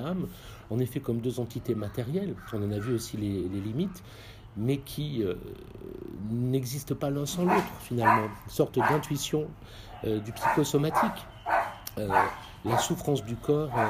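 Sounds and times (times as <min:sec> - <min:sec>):
speech: 0:00.1 - 0:13.8
dog barking: 0:01.8 - 0:03.1, 0:07.3 - 0:13.8.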